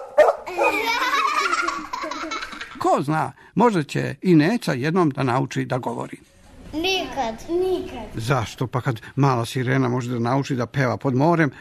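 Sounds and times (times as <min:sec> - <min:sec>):
dog barking: 0:00.0 - 0:00.8
laughter: 0:00.5 - 0:02.8
speech: 0:02.2 - 0:11.5.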